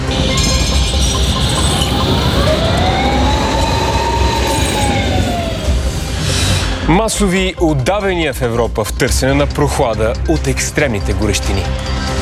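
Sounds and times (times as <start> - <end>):
tram wheels letting out a wavering metallic squeal: 0.1 - 6.6
tram rumbling at a city stop: 0.1 - 7.2
speech: 6.9 - 12.1.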